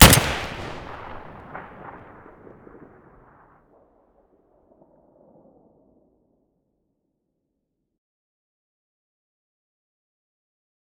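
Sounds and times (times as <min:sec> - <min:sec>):
SVD rifle muzzle blast in stereo: 0:00.0 - 0:01.6.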